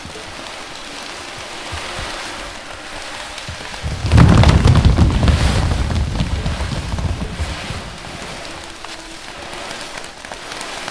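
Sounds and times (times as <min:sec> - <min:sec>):
rushing wash of rain or surf: 0:00.0 - 0:10.8
thunder rumbling over waves: 0:03.5 - 0:08.8.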